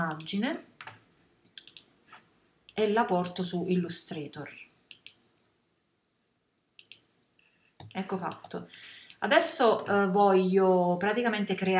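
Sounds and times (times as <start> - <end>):
speech: 0.0 - 0.7, 2.8 - 4.6, 7.9 - 11.7
quiet sharp computer mouse clicks: 0.1 - 1.9, 4.9 - 5.2, 6.8 - 7.1, 7.8 - 9.2.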